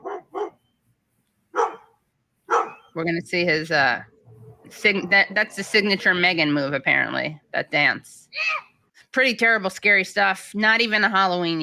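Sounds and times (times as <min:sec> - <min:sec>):
dog barking: 0:00.0 - 0:00.6, 0:01.5 - 0:03.0
speech: 0:03.0 - 0:04.1, 0:04.7 - 0:11.6.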